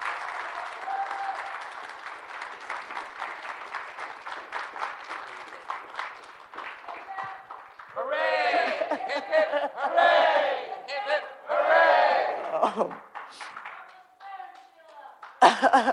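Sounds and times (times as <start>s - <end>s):
room full of people clapping: 0.0s - 9.4s, 12.3s - 14.0s, 15.2s - 15.9s
laughter: 8.3s - 11.0s, 12.4s - 13.0s, 15.4s - 15.9s.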